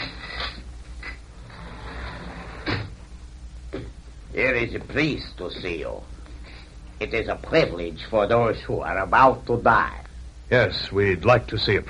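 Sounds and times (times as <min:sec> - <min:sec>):
door opening: 0:00.0 - 0:03.0
low steady hum: 0:00.0 - 0:11.8
speech: 0:04.4 - 0:06.2, 0:07.0 - 0:11.8.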